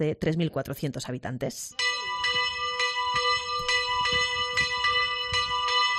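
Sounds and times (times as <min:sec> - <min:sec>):
speech: 0:00.0 - 0:01.8
hermitage church bell ringing: 0:01.8 - 0:05.9.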